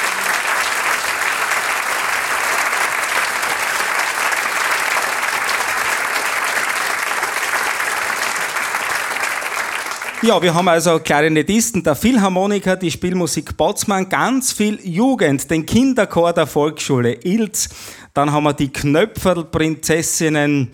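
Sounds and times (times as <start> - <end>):
large audience applauding: 0.0 - 10.8
speech: 10.2 - 20.7.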